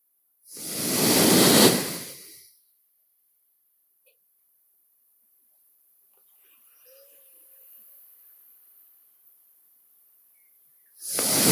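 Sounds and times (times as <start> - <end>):
slow steady inhale through both nostrils: 0.5 - 2.7, 11.0 - 11.5.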